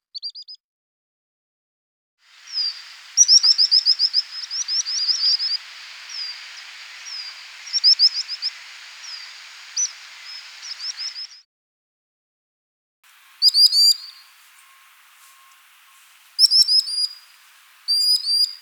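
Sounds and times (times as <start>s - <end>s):
Actitis hypoleucos common sandpiper: 2.3s - 11.4s, 13.0s - 18.6s.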